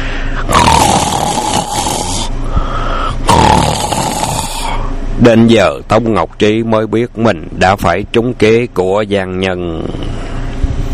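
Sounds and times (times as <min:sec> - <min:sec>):
man who has collapsed snoring loudly: 0:00.4 - 0:04.9
speech: 0:05.2 - 0:10.1.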